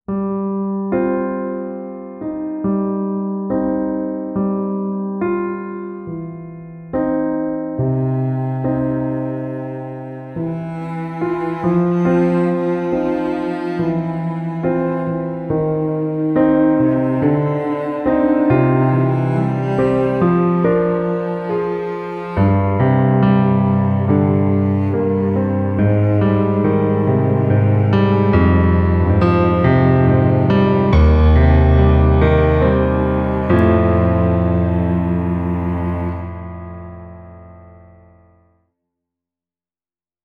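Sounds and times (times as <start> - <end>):
slow sad gentle piano: 0.1 - 38.5
slow sad cello: 7.6 - 38.1.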